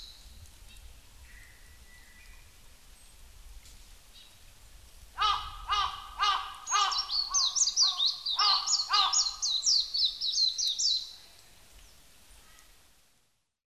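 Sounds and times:
Japanese white-eye calling: 0:05.2 - 0:10.8.

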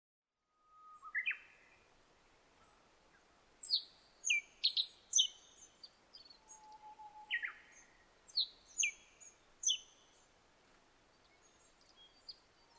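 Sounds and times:
black-faced bunting song: 0:00.6 - 0:10.4, 0:11.0 - 0:12.7
low steady whistle: 0:06.4 - 0:07.8.

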